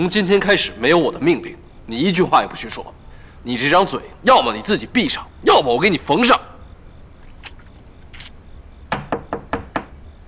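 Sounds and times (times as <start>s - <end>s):
speech: 0.0s - 6.5s
firm knocking on a door: 8.9s - 10.0s.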